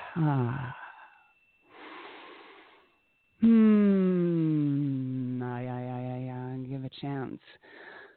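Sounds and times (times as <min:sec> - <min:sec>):
long steady loud humming tone during a guided breathing exercise: 0:00.0 - 0:01.2, 0:03.4 - 0:06.1
voiced sung sigh during a guided breathing exercise: 0:00.0 - 0:01.2, 0:03.4 - 0:05.4
speech: 0:00.2 - 0:00.8, 0:07.0 - 0:07.9
soft breathy exhale during a guided breathing exercise: 0:00.7 - 0:02.9, 0:07.6 - 0:08.1.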